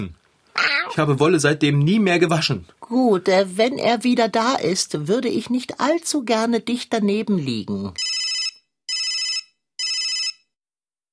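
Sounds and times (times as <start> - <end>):
speech: 0.0 - 8.1
mobile phone ringing: 8.0 - 10.5.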